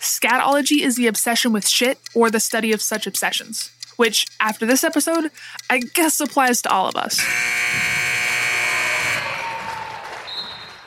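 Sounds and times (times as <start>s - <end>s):
speech: 0.2s - 8.0s
loud harsh buzzer: 7.2s - 9.5s.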